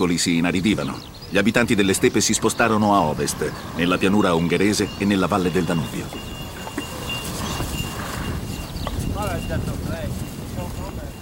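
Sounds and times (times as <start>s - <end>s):
speech: 0.0s - 6.3s
constant rumble of wind: 0.0s - 11.2s
horse hooves clip-clopping at a walking pace: 2.6s - 11.2s.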